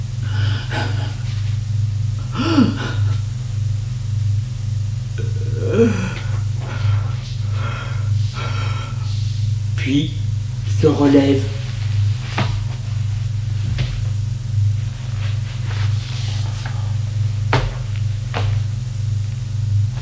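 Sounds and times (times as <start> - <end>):
steady low hum: 0.0 - 20.0
boy crying and sobbing with gasping breaths: 2.2 - 3.2, 5.2 - 6.9
speech: 10.9 - 11.5.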